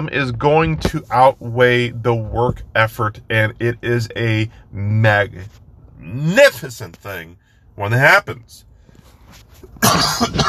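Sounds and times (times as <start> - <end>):
speech: 0.0 - 8.7, 9.3 - 10.4
single harsh raspy cough: 9.8 - 10.4.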